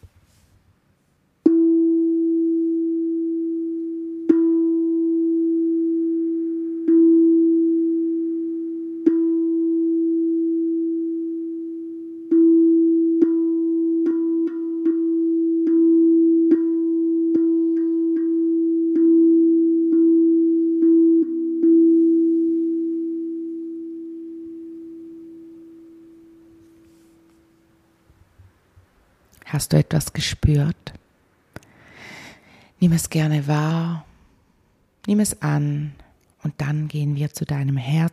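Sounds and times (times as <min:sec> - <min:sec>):
steady pure musical tone on the note E: 0:01.5 - 0:28.0
speech: 0:29.6 - 0:31.0, 0:32.8 - 0:34.1, 0:35.1 - 0:38.1.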